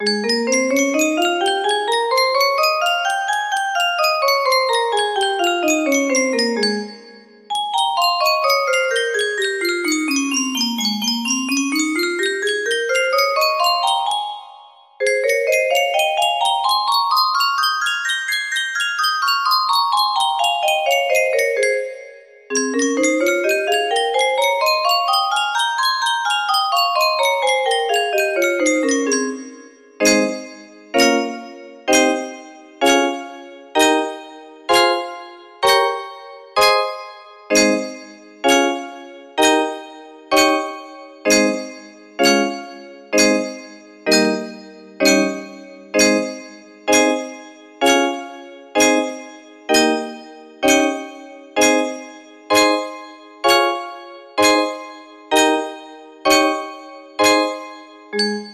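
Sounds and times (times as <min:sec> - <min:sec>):
music box melody in A flat major: 0:00.0 - 0:58.5.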